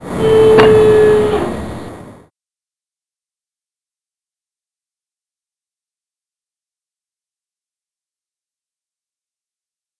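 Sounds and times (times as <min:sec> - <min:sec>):
heavy gunship select sound: 0:00.1 - 0:01.6.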